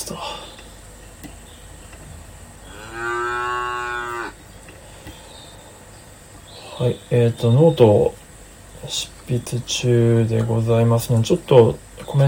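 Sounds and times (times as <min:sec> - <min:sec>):
cow mooing: 0:02.7 - 0:04.4
speech: 0:06.8 - 0:08.2, 0:08.8 - 0:12.2.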